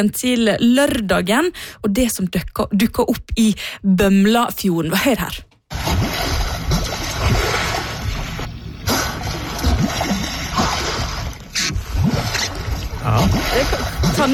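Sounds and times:
speech: 0.0 - 5.5, 13.0 - 14.3
heavy water splashing and sloshing in Bømlafjorden in Sunnhordland Norway: 5.7 - 14.3.

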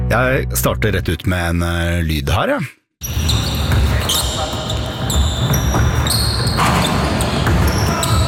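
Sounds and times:
speech: 0.1 - 3.2
rubber shoes squeaking on a basketball court in a sports arena: 3.0 - 8.2
crowd noise in a sports arena: 3.2 - 8.2.

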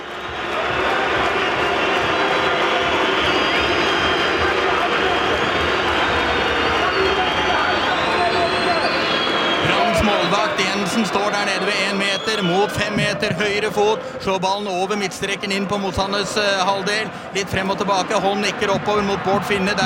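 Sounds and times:
large stadium crowd cheering at football final: 0.0 - 19.8
speech: 11.0 - 19.8.

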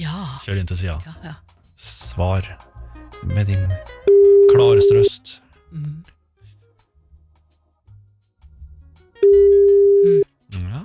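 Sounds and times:
speech: 0.0 - 6.2
telephone ringing tone: 4.1 - 5.1, 9.2 - 10.2.

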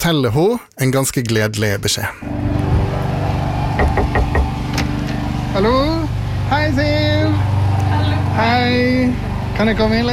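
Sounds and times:
speech: 0.0 - 2.6, 5.6 - 7.6, 8.4 - 10.1
low hum: 2.2 - 10.1
knocking on a door: 3.8 - 4.9.

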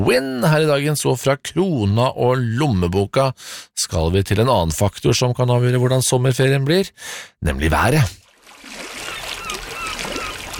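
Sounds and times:
speech: 0.0 - 8.2
summer waves lapping and splashing: 8.2 - 10.5
gulls crying: 9.0 - 10.5.

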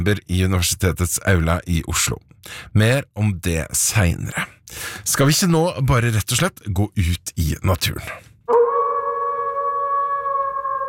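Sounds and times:
speech: 0.0 - 8.6
wolf howling: 8.5 - 10.8.

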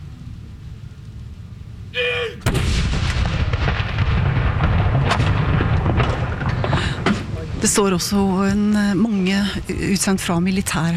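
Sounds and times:
cannon salute blast: 2.4 - 7.4
speech: 7.6 - 10.9.

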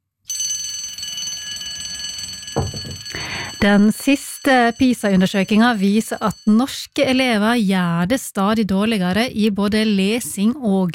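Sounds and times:
alarm bell ringing: 0.3 - 7.3
low thump: 2.6 - 3.0
speech: 3.6 - 10.9.

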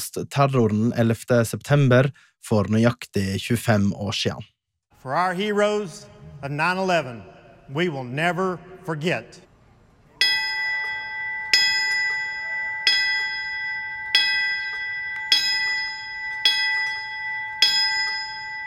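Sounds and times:
speech: 0.2 - 9.5
memorial bell ringing with clear bright strikes: 10.2 - 18.6.

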